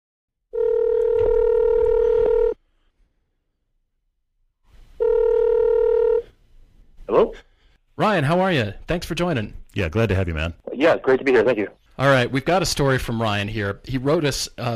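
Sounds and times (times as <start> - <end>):
outgoing phone call ringing tone: 0.5 - 2.6, 5.0 - 6.3
speech: 7.2 - 14.7.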